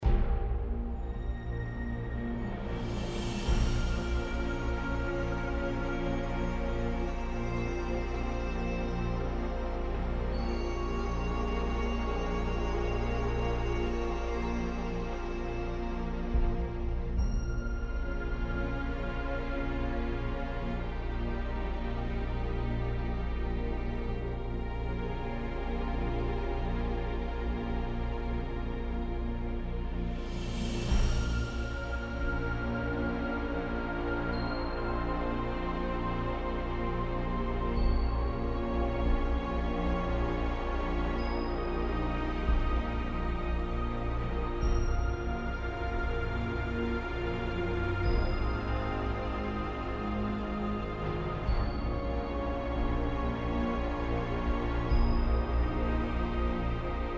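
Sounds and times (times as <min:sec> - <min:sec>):
music: 0:00.0 - 0:57.1.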